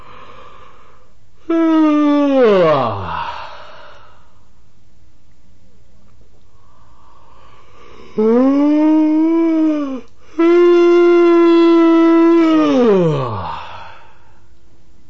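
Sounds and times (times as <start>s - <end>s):
male patient yawning during a Reichian therapy session: 1.5s - 3.8s, 8.2s - 14.0s.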